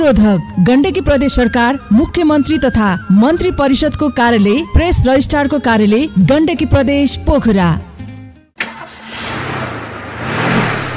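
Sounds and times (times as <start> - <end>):
speech: 0.0 - 7.9
car engine of a broken-down vehicle turning over and roaring roughly: 8.6 - 10.9.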